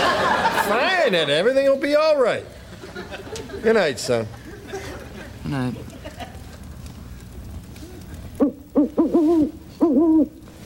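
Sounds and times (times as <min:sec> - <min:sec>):
laughter: 0:00.0 - 0:01.5, 0:02.5 - 0:07.1
speech: 0:01.1 - 0:04.4, 0:05.5 - 0:05.9, 0:09.0 - 0:10.4
owl hooting at night: 0:08.4 - 0:10.4.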